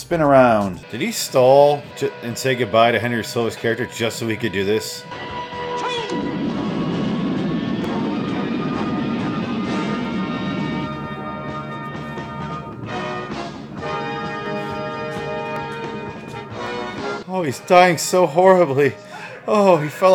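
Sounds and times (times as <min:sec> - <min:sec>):
speech: 0:00.0 - 0:05.5, 0:17.4 - 0:20.1
rocket roaring through the air: 0:04.1 - 0:17.3.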